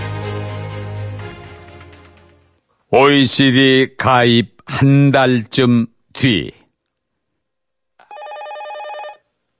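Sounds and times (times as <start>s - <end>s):
speech: 2.9s - 6.6s
telephone ringing with an electronic trill: 8.0s - 9.3s.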